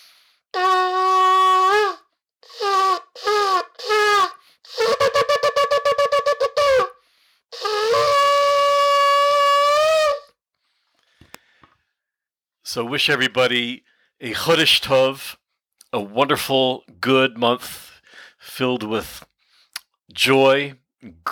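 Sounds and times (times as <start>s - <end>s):
shofar blown for the first day of Elul: 0.6s - 7.0s, 7.6s - 10.3s
speech: 12.7s - 19.3s, 20.1s - 21.3s.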